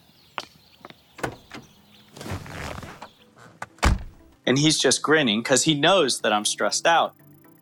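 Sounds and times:
car door opening with sharp clicks: 1.2s - 4.3s
rustling as someone gets into a car: 2.1s - 3.6s
speech: 4.5s - 7.2s.

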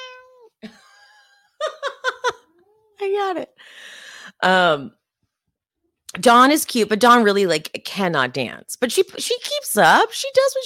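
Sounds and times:
cat meowing: 0.0s - 0.6s
speech: 0.6s - 0.8s, 3.1s - 5.0s, 6.1s - 10.6s
laughter: 0.6s - 2.5s.

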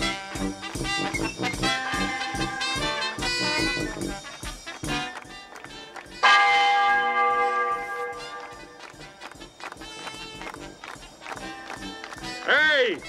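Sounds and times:
hurried footsteps: 0.0s - 13.0s
church bells ringing in a loud bright peal: 1.7s - 3.4s, 6.0s - 9.8s.

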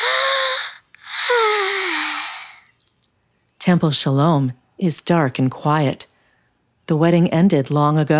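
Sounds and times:
long breathy yawn: 0.0s - 2.7s
speech: 3.7s - 6.1s, 6.9s - 8.1s.

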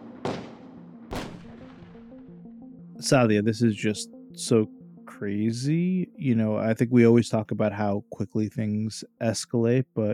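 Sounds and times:
gunshots: 0.0s - 2.0s
speech: 3.0s - 10.1s.

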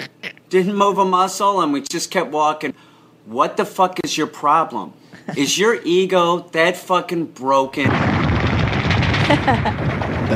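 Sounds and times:
speech: 0.5s - 8.6s, 9.3s - 10.3s
machine gun fire: 7.8s - 10.3s.

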